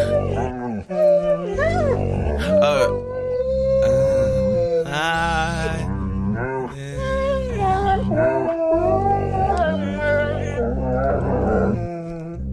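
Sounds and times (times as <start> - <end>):
several dogs howling and yipping to a Christmas carol: 0.0 - 5.7, 7.1 - 12.4.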